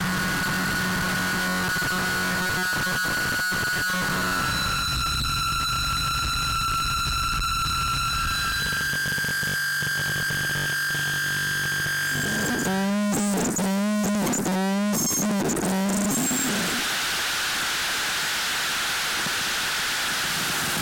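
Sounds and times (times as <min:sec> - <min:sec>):
harsh noise: 0:00.1 - 0:20.8.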